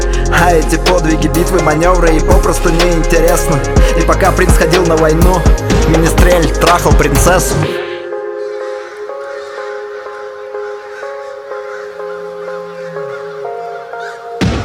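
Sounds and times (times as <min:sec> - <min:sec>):
speech: 0:00.4 - 0:07.8
flock of crows cawing: 0:07.8 - 0:14.5.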